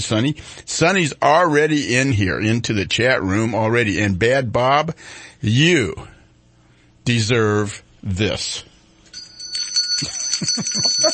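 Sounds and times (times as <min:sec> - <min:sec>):
speech: 0:00.0 - 0:06.1, 0:07.1 - 0:08.7, 0:10.0 - 0:11.1
double bell ringing: 0:09.1 - 0:11.1.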